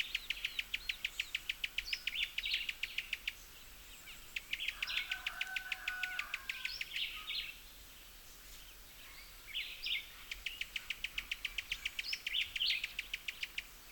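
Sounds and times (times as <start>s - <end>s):
Cuban tody calling with dry ticking and chirps: 0.0s - 7.2s, 10.2s - 13.8s.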